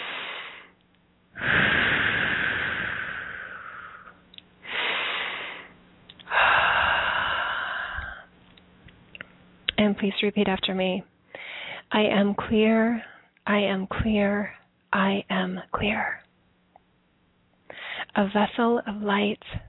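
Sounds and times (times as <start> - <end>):
deep breathing: 0.0 - 0.8, 1.4 - 8.3, 11.3 - 11.9, 17.7 - 18.1
speech: 9.8 - 11.1, 11.9 - 16.2, 18.2 - 19.6.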